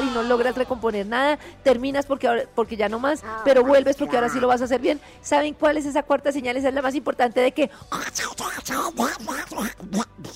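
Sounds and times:
speech: 0.2 - 10.3
voice imitating a duck in a raspy cartoon-duck style: 3.2 - 4.6, 8.0 - 10.3.

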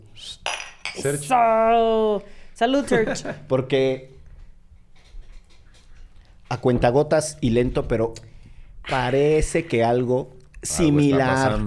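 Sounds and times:
speech: 0.2 - 4.2, 6.5 - 11.6
champagne glasses clinking in a toast: 0.4 - 1.1
laughter: 10.7 - 11.6.

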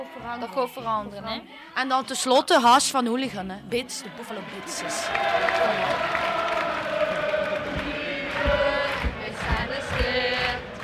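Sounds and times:
speech: 0.1 - 6.6
large football stadium crowd chanting and singing in unison: 4.1 - 10.8.

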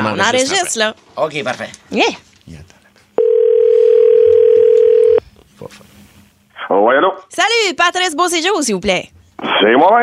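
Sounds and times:
speech: 0.1 - 2.7, 6.7 - 10.0
ringback tone on an outgoing telephone call: 3.2 - 5.2.

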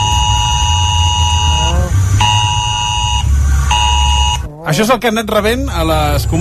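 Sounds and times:
civil protection mobile phone emergency alert buzzing tones: 0.0 - 4.5
low rumbling background: 0.0 - 6.3
speech: 4.7 - 6.3.

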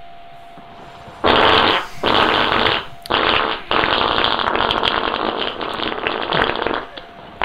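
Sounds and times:
long loud sputtering fart: 1.2 - 7.4.

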